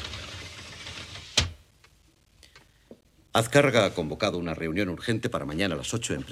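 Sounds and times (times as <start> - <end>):
sliding living room door rolling along its track: 0.0 - 1.5
speech: 3.4 - 6.3.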